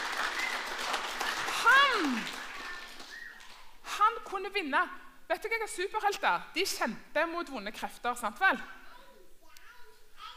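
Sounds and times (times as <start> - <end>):
small group clapping: 0.0 - 3.8
speech: 2.0 - 2.4, 4.4 - 8.8.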